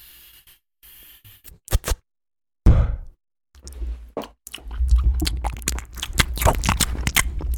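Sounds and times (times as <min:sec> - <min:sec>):
exaggerated wet chewing mouth noises: 0:03.6 - 0:07.5.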